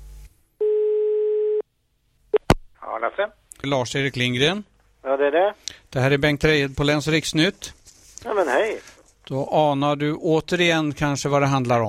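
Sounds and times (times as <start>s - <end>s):
steady mid-pitched telephone line tone while placing a call: 0.6s - 1.6s
speech: 3.0s - 11.8s.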